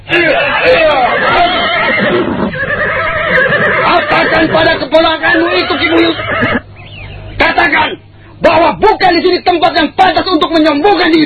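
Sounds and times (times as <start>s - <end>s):
horse neighing: 0.2s - 6.7s
speech: 4.4s - 6.6s, 7.6s - 11.2s.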